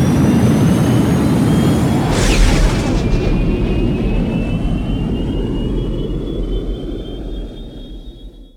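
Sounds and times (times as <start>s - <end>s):
ships launching from docking bay: 0.1s - 7.2s.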